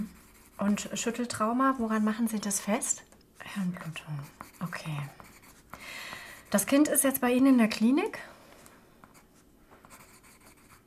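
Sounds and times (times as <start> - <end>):
pen writing notes on paper: 0.0 - 6.9, 9.1 - 10.8
speech: 0.6 - 5.2, 6.5 - 8.3.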